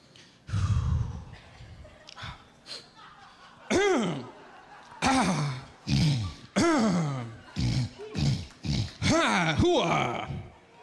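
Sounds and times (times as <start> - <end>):
laughter: 1.1 - 10.8
man clearing throat and hacking as a comic sore-throat poem: 3.7 - 4.3, 5.0 - 10.5.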